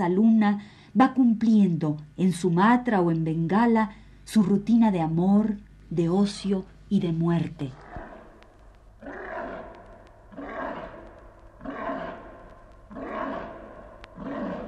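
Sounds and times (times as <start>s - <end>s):
speech: 0.0s - 7.8s
tiger roaring: 7.8s - 8.4s, 9.0s - 14.6s.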